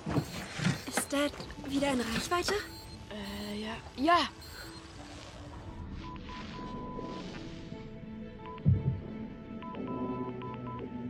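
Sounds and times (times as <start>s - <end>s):
Morse code electronic beeps: 0.0s - 5.0s, 5.8s - 7.4s, 8.4s - 8.7s, 9.6s - 10.9s
speech: 1.1s - 4.4s.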